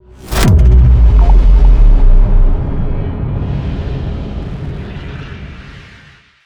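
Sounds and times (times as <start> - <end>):
bad omen sound effect for an archeology event: 0.2 - 4.7.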